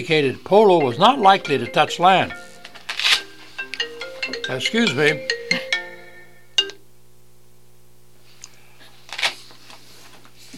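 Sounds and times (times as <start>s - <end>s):
speech: 0.0s - 2.4s, 4.5s - 5.6s
phone ringtone chirping in short electronic bursts: 0.7s - 6.8s.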